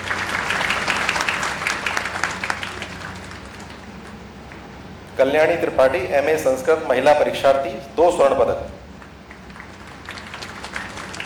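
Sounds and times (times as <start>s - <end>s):
sizable audience applauding: 0.0s - 4.2s, 9.0s - 11.2s
speech: 5.2s - 8.8s.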